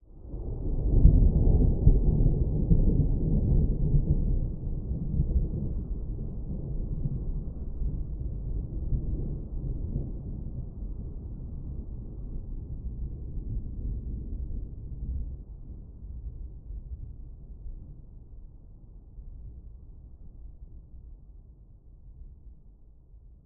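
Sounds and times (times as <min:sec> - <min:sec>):
distant long rolling thunder: 0:00.3 - 0:18.4.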